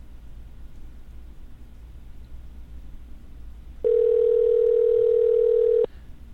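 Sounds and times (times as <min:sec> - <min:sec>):
phone ringback tone while a call goes through: 0:03.8 - 0:05.9.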